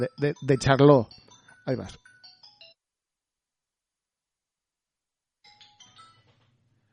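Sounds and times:
speech: 0:00.0 - 0:02.0
mobile phone ringtone with bright chiming notes: 0:00.0 - 0:02.8, 0:05.4 - 0:06.5.

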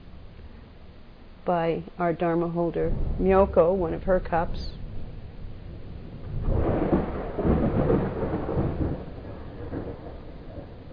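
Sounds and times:
soft hiss: 0:00.0 - 0:10.9
speech: 0:01.5 - 0:04.8
rolling thunder: 0:02.8 - 0:10.9.

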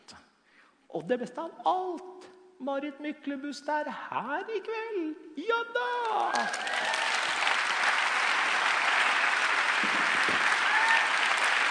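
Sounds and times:
speech: 0:00.9 - 0:07.1
faint voices and cheers: 0:06.2 - 0:07.6, 0:08.9 - 0:11.6
audience applause: 0:06.2 - 0:11.6.

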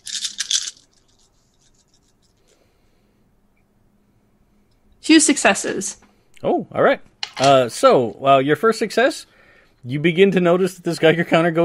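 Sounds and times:
dice clattering and tumbling across a hard surface: 0:00.0 - 0:02.4
speech: 0:05.1 - 0:11.6.

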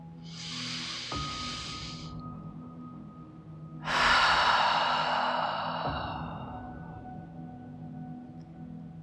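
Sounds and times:
deep cleansing breaths during a guided meditation: 0:00.3 - 0:02.2, 0:03.8 - 0:07.3.

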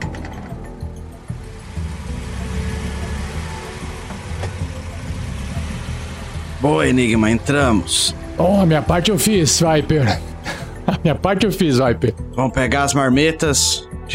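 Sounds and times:
car engine rumbling as car rolls in: 0:00.0 - 0:11.2
speech: 0:06.6 - 0:10.3, 0:11.0 - 0:14.1
laughter: 0:09.9 - 0:12.2.

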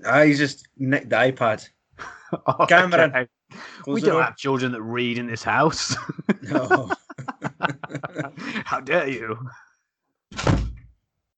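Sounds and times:
speech: 0:00.0 - 0:07.0, 0:07.9 - 0:09.6
laughter: 0:02.0 - 0:03.2, 0:05.6 - 0:09.5
heavy door slamming shut: 0:10.3 - 0:10.9.

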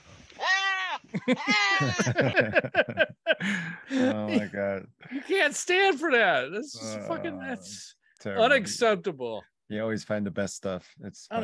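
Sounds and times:
goat bleating in distress: 0:00.4 - 0:02.0
laughter: 0:01.1 - 0:05.5, 0:06.8 - 0:07.8, 0:08.4 - 0:08.9, 0:09.8 - 0:10.6
speech: 0:01.3 - 0:11.4.

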